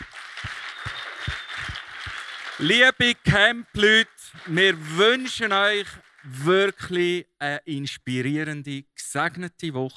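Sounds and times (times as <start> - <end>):
group clapping as a welcome at a camp: 0.0 - 6.9
speech: 2.6 - 9.9.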